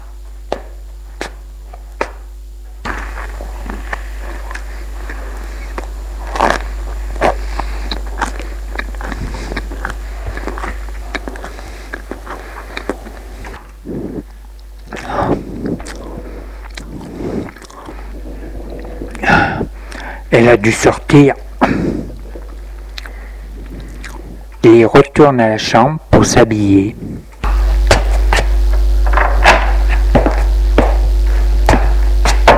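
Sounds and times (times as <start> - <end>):
low steady hum: 0.0 - 32.5
person biting and chewing a slice of bread: 0.1 - 20.3, 21.4 - 24.6
speech: 20.4 - 21.8, 24.6 - 27.0.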